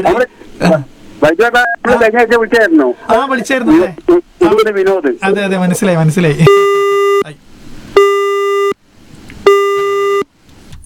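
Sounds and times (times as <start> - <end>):
speech: 0.0 - 7.4
telephone line beeps after a dropped call: 6.5 - 7.3, 8.0 - 8.8, 9.5 - 10.3.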